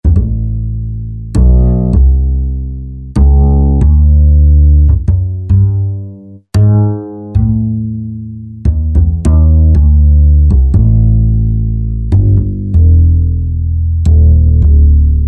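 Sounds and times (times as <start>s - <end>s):
upright jazz bass: 0.0s - 15.2s.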